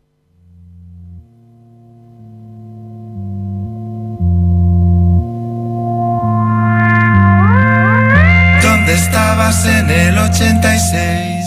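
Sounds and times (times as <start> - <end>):
rock band steady bass line: 0.2 - 11.4
bright synth-like tones gliding upward: 5.2 - 11.4.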